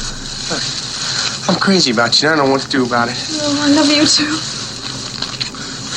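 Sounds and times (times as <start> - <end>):
passenger train rumbling at a station: 0.0 - 1.3
speech: 1.5 - 4.6.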